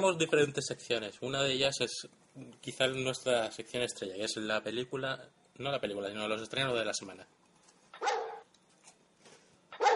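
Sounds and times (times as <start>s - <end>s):
speech: 0.0s - 7.4s
dog barks used as a section jingle: 8.0s - 8.5s, 9.7s - 9.9s.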